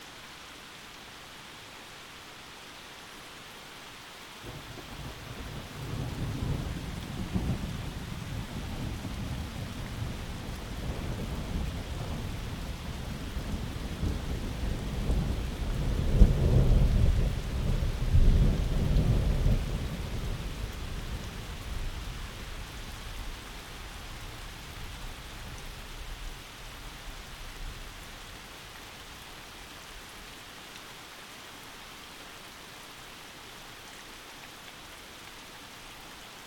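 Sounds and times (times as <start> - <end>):
thunderstorm: 4.5 - 23.3.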